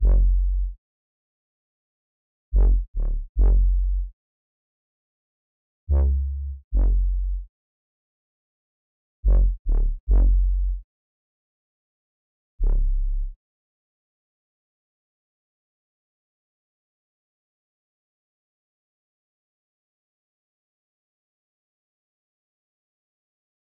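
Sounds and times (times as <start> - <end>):
bass melody loop in F sharp minor: 0.0 - 0.8, 2.6 - 4.1, 5.9 - 7.5, 9.3 - 10.8.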